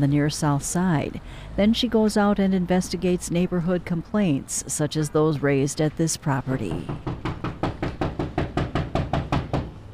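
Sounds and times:
speech: 0:00.0 - 0:07.1
firm knocking on a front door: 0:06.7 - 0:09.8.

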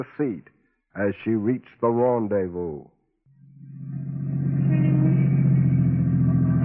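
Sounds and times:
speech: 0:00.0 - 0:03.0
car engine idling while parking: 0:03.4 - 0:06.6.

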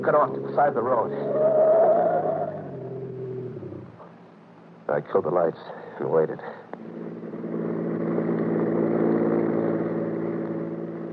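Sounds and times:
speech: 0:00.0 - 0:01.7, 0:04.9 - 0:06.7
car engine roaring past: 0:00.0 - 0:04.0, 0:06.8 - 0:11.1.

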